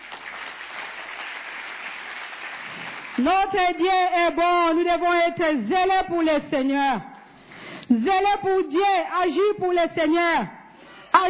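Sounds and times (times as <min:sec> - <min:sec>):
church congregation applauding: 0:00.0 - 0:03.6
speech: 0:03.2 - 0:07.1, 0:07.9 - 0:10.6.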